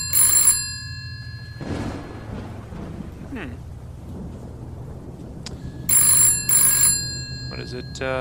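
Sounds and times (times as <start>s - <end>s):
telephone ringing: 0.0s - 2.4s, 5.8s - 8.1s
low rumbling ambience: 0.7s - 8.1s
speech: 3.4s - 3.7s, 7.7s - 8.1s.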